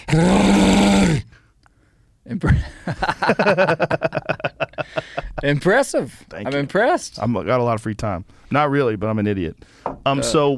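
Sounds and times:
man imitating a bear roar: 0.0s - 1.3s
speech: 0.1s - 0.4s, 2.4s - 4.1s, 4.9s - 10.5s
rhythmic breathy laughter: 2.6s - 5.4s.

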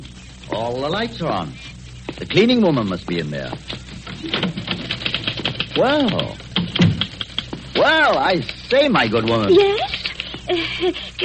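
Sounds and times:
speech: 0.6s - 4.8s, 5.8s - 6.4s, 7.8s - 11.2s
typewriter keystrokes: 4.2s - 10.3s.

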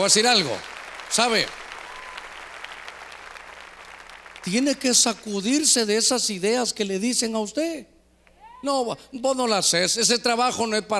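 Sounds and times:
speech: 0.0s - 1.6s, 4.4s - 8.0s, 8.6s - 10.9s
audience clapping loudly: 0.0s - 5.1s.

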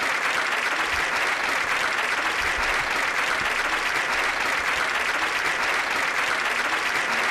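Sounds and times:
large crowd applauding a speaker: 0.0s - 7.3s.

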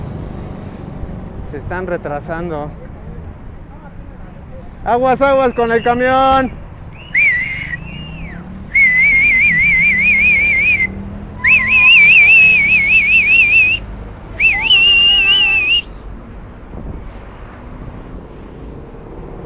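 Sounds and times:
speech: 1.5s - 2.8s, 4.8s - 6.6s
warbling whistles: 5.5s - 13.8s, 14.4s - 15.9s.

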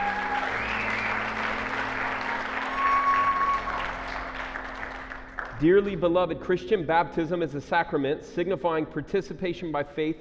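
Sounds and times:
people applauding baptism candidates at a church baptism service: 0.0s - 5.7s
speech: 5.6s - 10.1s.

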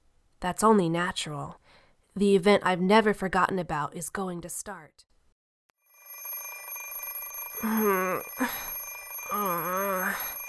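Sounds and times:
speech: 0.4s - 1.6s, 2.2s - 5.1s, 7.6s - 10.4s
alarm clock ringing: 5.8s - 10.4s
person groaning and whining: 9.3s - 10.3s.

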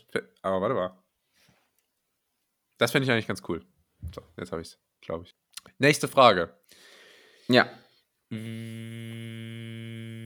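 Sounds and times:
speech: 0.1s - 1.0s, 2.8s - 6.9s, 7.5s - 9.6s
loud bumblebee-like buzzing hum: 8.3s - 10.2s.

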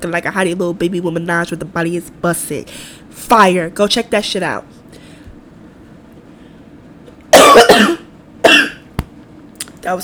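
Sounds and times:
speech: 0.0s - 4.8s, 9.8s - 10.0s
person coughing hard: 7.3s - 8.9s.

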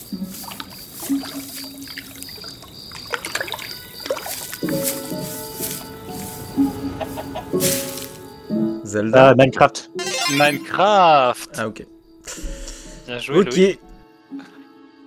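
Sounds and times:
video game chickens clucking: 0.0s - 8.3s, 10.0s - 10.7s
speech: 9.0s - 11.9s, 13.1s - 14.4s
brief tonal notes: 10.0s - 10.8s.

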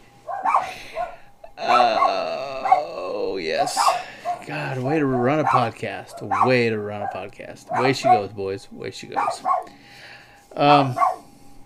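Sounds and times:
dog yipping and barking: 0.3s - 1.2s, 2.0s - 2.9s, 6.3s - 8.3s, 9.2s - 9.7s, 11.0s - 11.2s
dog whining yaps: 0.3s - 3.0s, 6.3s - 8.3s, 9.2s - 9.7s, 11.0s - 11.2s
speech: 3.6s - 11.1s.

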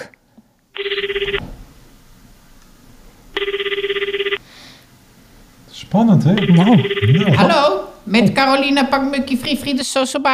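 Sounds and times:
telephone ringing with a bright trilling electronic ring as a call is placed: 0.8s - 1.5s, 3.4s - 4.4s, 6.4s - 7.8s
speech: 5.9s - 10.3s.

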